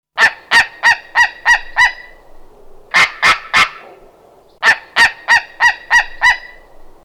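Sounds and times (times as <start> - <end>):
white-tailed eagle calling: 0.2 - 7.0.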